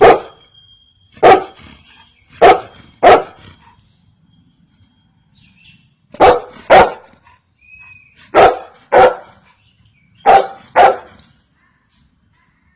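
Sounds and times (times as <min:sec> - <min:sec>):
Golden retriever barking: 0:00.0 - 0:00.4, 0:01.2 - 0:01.6, 0:02.4 - 0:03.4, 0:06.2 - 0:07.2, 0:08.3 - 0:09.4, 0:10.2 - 0:11.2.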